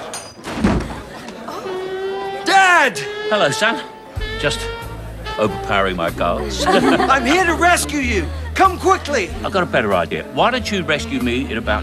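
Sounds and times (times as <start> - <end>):
door being kicked down: 0.0 - 1.4
laughter: 0.0 - 11.8
speech: 2.8 - 4.8, 5.4 - 11.8.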